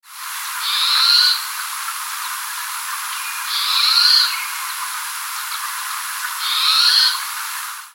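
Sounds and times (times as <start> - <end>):
steady high hiss: 0.0 - 7.9
bird giving hissing buzzy calls: 0.6 - 1.6, 3.1 - 7.6.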